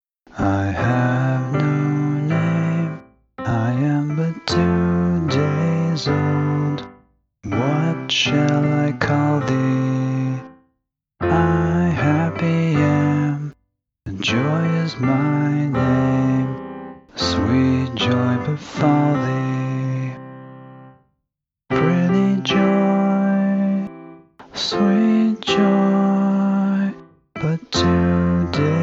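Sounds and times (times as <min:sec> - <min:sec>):
person singing a scratch vocal: 0:00.3 - 0:10.6, 0:11.2 - 0:20.5, 0:21.7 - 0:28.8.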